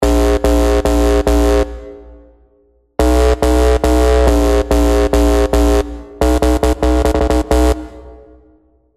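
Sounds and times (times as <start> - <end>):
garage bass music: 0.0 - 2.2, 3.0 - 8.3.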